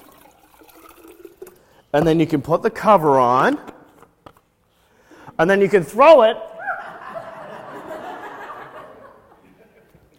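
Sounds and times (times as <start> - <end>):
water pouring into a water bottle: 0.0 - 1.9
speech: 1.9 - 3.7, 5.4 - 6.5
laughter: 6.6 - 10.1.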